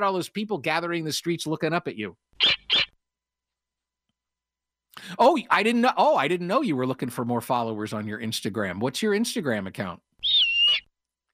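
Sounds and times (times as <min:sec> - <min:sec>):
speech: 0:00.0 - 0:02.7, 0:05.1 - 0:10.1
snowy owl hooting on a roof in Cypress: 0:02.4 - 0:02.9, 0:10.2 - 0:10.9.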